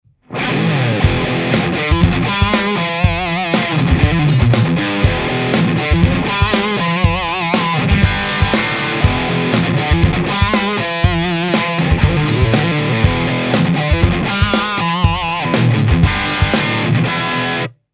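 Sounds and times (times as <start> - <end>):
guitar through amplifier recorded for a microphone test: 0.2 - 17.8.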